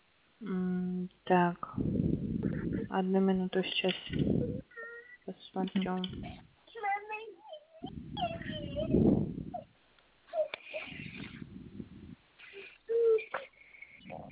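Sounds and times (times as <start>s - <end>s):
speech: 0.4s - 0.7s, 1.3s - 2.2s, 2.9s - 6.5s
steady rumble of noise: 1.2s - 4.7s, 5.4s - 7.1s, 7.8s - 9.8s, 10.4s - 13.3s
young child crying and whimpering: 4.4s - 5.3s, 6.7s - 9.7s, 10.3s - 11.4s, 12.4s - 14.0s.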